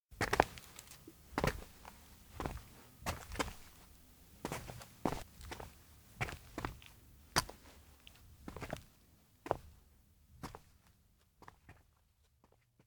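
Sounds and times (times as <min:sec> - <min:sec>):
footsteps trudging outdoors in a town: 0:00.2 - 0:08.9.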